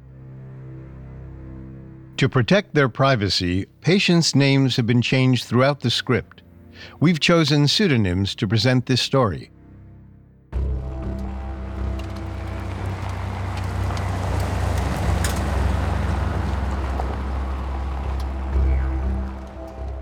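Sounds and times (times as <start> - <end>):
speech: 2.2 - 9.6
car driving on a dusty back road: 10.6 - 20.0.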